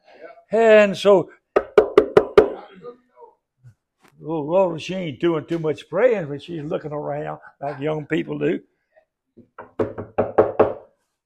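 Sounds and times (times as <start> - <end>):
speech: 0.5 - 1.4, 4.2 - 8.7, 9.4 - 10.2
knocking on wood: 1.6 - 2.6, 9.4 - 10.9.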